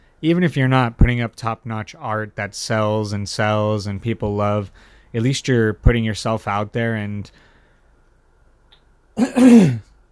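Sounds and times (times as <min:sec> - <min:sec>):
speech: 0:00.2 - 0:07.5, 0:09.2 - 0:09.9
throat clearing from someone with a sore throat: 0:09.2 - 0:10.0.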